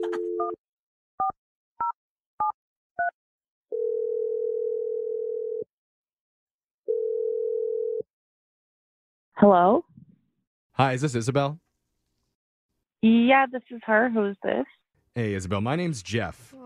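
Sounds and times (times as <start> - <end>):
telephone ringback tones: 3.7 - 5.7, 6.9 - 8.0
speech: 9.4 - 9.9, 10.8 - 11.6, 13.0 - 16.6.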